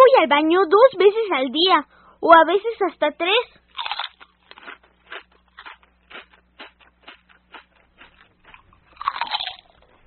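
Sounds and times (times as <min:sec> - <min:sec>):
speech: 0:00.3 - 0:04.0
crunchy chewing of food: 0:03.6 - 0:10.0.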